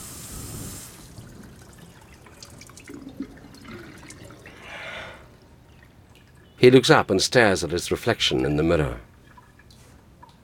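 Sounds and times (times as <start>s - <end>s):
water running from a tap over a basin: 0.0s - 4.5s
small splashes as a flannel is washed under a tap: 0.9s - 6.6s, 9.1s - 10.4s
speech: 6.6s - 9.1s.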